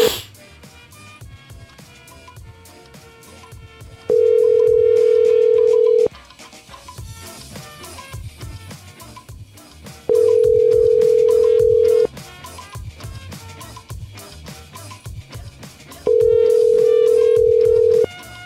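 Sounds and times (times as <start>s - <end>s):
music: 0.0s - 18.4s
telephone ringback tone: 4.1s - 6.1s, 10.1s - 12.1s, 16.1s - 18.1s.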